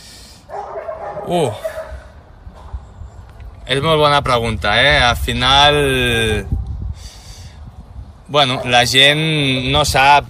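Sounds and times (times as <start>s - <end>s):
dog barking at an animal shelter: 0.5s - 2.1s, 8.5s - 8.8s
speech: 1.3s - 1.7s, 3.7s - 6.6s, 8.3s - 10.2s.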